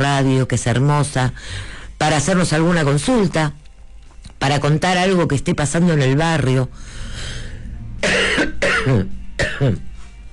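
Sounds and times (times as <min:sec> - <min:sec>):
speech: 0:00.1 - 0:03.6, 0:04.4 - 0:07.4, 0:08.0 - 0:09.9
harsh coughing from someone with a lingering cough: 0:08.0 - 0:09.8.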